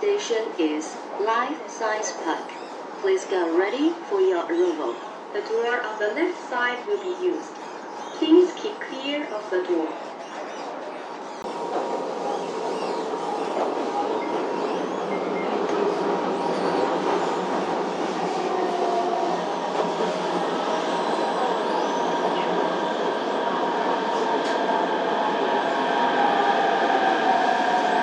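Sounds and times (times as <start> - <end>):
subway train approaching a station: 0.0 - 28.0
speech: 0.2 - 7.6, 8.2 - 10.1.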